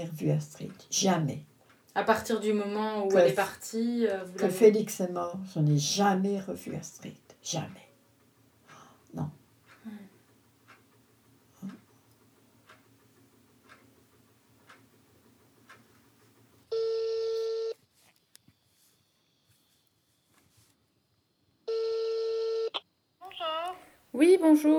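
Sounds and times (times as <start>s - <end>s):
speech: 0.0s - 7.8s, 9.1s - 10.0s, 24.2s - 24.7s
long loud telephone ringing tones on the line: 16.7s - 17.8s, 21.7s - 22.8s.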